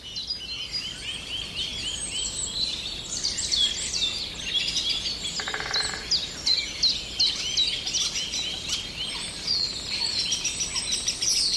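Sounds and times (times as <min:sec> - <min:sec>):
Eurasian blackbird singing: 0:00.0 - 0:11.5
dense chorus of birdsong with chirps, whistles and trills: 0:00.0 - 0:11.5.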